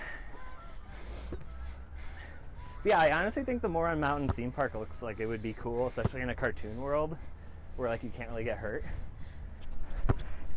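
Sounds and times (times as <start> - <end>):
geese honking with nasal calls: 0.0 - 7.2
speech: 2.8 - 9.0.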